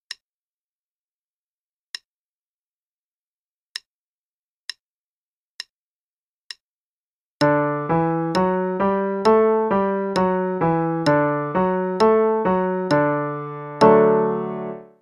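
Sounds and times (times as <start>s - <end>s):
D major musical pattern: 7.4s - 15.0s.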